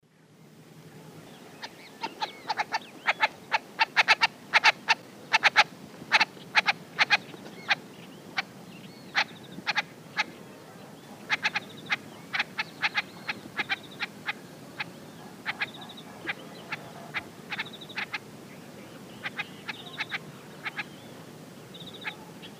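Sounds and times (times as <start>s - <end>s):
Gallinago paraguaiae flush calls in the Eastern Lowlands of South America: 1.6s - 7.8s, 9.1s - 10.4s, 11.2s - 18.3s, 19.2s - 21.0s, 21.7s - 22.5s.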